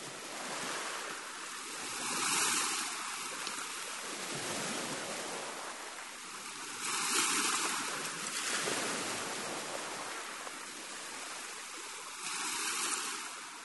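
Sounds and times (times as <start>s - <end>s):
constant broadband hiss of surf: 0.0s - 13.6s
ocean waves surging and washing in: 0.0s - 13.6s.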